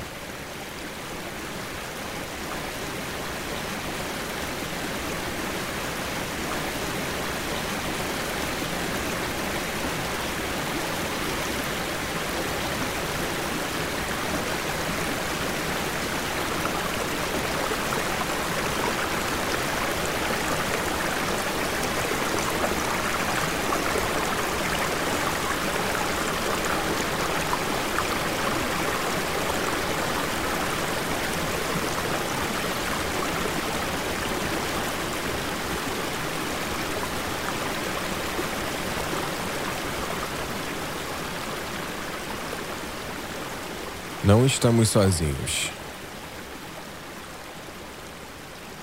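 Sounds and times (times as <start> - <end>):
stream water flowing in forest: 0.0 - 48.8
speech: 44.3 - 45.8.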